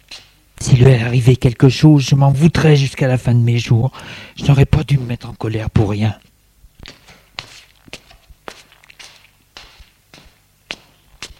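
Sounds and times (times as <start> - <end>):
speech: 0.6 - 6.3
footsteps of someone pacing: 6.7 - 11.3.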